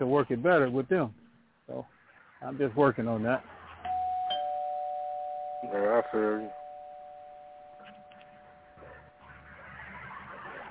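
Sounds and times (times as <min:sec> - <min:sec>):
speech: 0:00.0 - 0:03.6, 0:05.6 - 0:06.6
doorbell ringing with an electronic tone: 0:03.9 - 0:09.4.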